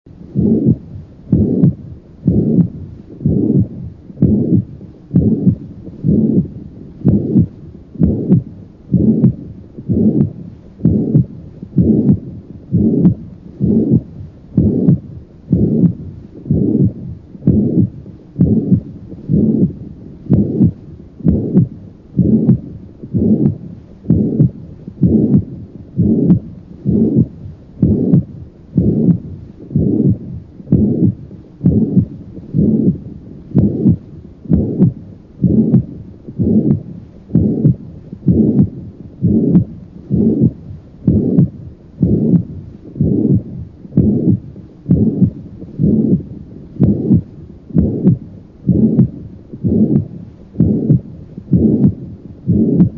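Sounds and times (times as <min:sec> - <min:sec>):
mitral regurgitation heart murmur: 0:00.3 - 0:52.9.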